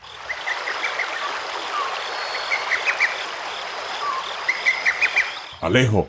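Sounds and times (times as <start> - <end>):
waterfall rushing water: 0.1 - 5.4
bird chirps: 0.3 - 3.2, 4.0 - 5.7
speech: 5.6 - 6.0.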